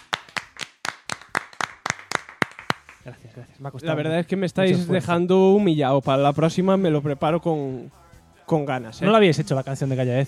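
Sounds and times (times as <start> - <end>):
audience clapping in applause: 0.0 - 3.2
speech: 3.1 - 10.2.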